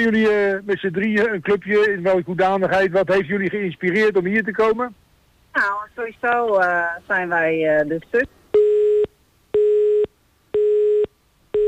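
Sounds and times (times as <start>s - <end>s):
speech: 0.0s - 5.0s, 5.6s - 8.4s
telephone busy tone after a dropped call: 8.6s - 11.6s.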